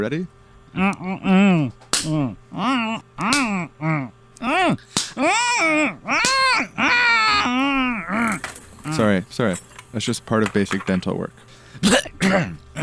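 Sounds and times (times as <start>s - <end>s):
speech: 0.0s - 12.8s
person yelping and wailing: 0.7s - 9.1s
slaps to the face: 1.8s - 2.3s, 3.2s - 3.6s, 4.9s - 5.2s, 6.2s - 6.5s.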